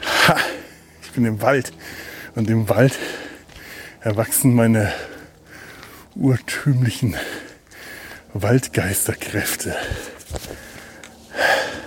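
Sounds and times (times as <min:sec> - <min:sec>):
speech: 0:00.3 - 0:00.6, 0:01.2 - 0:03.2, 0:04.0 - 0:05.1, 0:06.2 - 0:07.4, 0:08.4 - 0:10.7
heavy panting while walking downhill: 0:01.8 - 0:06.1, 0:07.1 - 0:08.3, 0:09.7 - 0:11.8.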